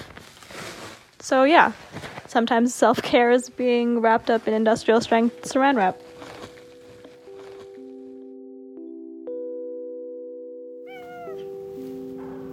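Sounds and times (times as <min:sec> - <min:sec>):
speech: 0:01.2 - 0:06.0
steady sustained musical tones: 0:04.9 - 0:12.5
cat giving a short clear meow: 0:10.9 - 0:11.5.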